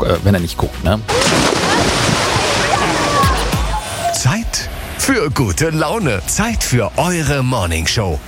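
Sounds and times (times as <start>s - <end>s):
speech: 0.0s - 1.7s, 4.2s - 8.2s
person jumping from the pool edge into an outdoor swimming pool in Gescher: 1.1s - 3.9s.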